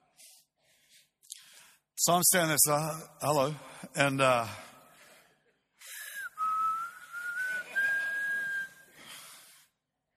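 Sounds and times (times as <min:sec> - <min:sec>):
speech: 0:02.0 - 0:04.7
person whistling a short tune: 0:05.9 - 0:08.9.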